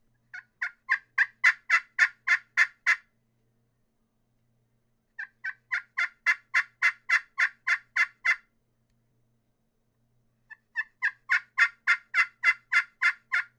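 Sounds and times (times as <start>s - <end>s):
turkey yelps on a crystal yellowheart call: 0.3s - 3.0s, 5.2s - 8.4s, 10.5s - 13.5s.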